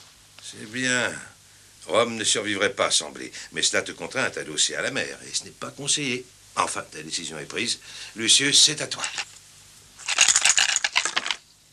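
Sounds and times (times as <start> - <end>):
speech: 0.5 - 9.4
dice rolling in a board game of Roman conquest: 9.0 - 9.3, 10.0 - 11.4.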